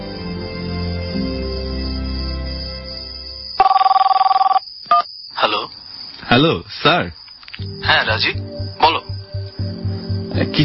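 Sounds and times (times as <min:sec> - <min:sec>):
music: 0:00.0 - 0:03.6, 0:07.6 - 0:10.6
ringback tone of an outgoing telephone call: 0:03.6 - 0:05.1
speech: 0:06.4 - 0:09.0, 0:10.4 - 0:10.6.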